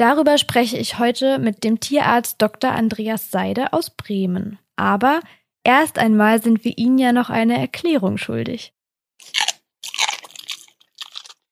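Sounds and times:
speech: 0.0 - 9.4
dog chewing and smacking wetly on frozen dog ice cream: 9.2 - 11.4.

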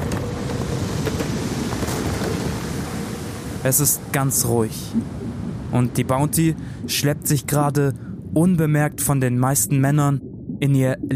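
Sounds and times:
strong wind roaring over open sea: 0.0 - 11.1
faint wave wash: 0.9 - 8.3
speech: 3.6 - 11.1.

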